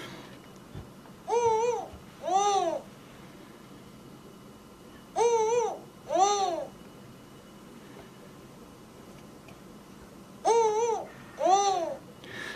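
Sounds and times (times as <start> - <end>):
male and female spotted eagle-owls hooting in duet: 1.3 - 2.9, 5.2 - 6.8, 10.4 - 12.1.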